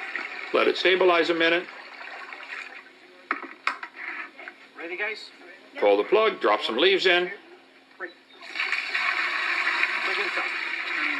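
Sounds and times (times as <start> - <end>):
water running steadily into a sink: 0.0 - 2.9, 8.4 - 11.1
speech: 0.5 - 1.8, 4.9 - 7.4, 8.0 - 8.2.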